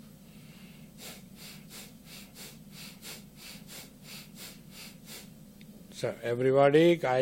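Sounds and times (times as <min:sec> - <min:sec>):
low constant hum: 0:00.0 - 0:07.1
mild bhastrika breathing with forceful inhales and exhales from the stomach: 0:00.2 - 0:05.4
speech: 0:06.0 - 0:07.1.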